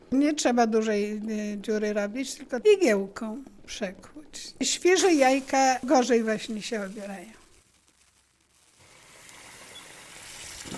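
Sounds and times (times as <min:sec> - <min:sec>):
speech: 0:00.1 - 0:07.4
cold water pouring into a pot of hard-boiled eggs: 0:04.9 - 0:10.7.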